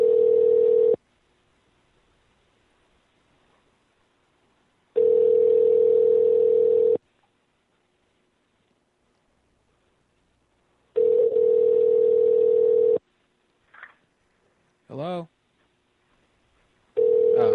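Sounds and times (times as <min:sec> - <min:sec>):
telephone ringback tones on an unanswered call: 0:00.0 - 0:01.0, 0:05.0 - 0:07.0, 0:11.0 - 0:13.0, 0:17.0 - 0:17.5.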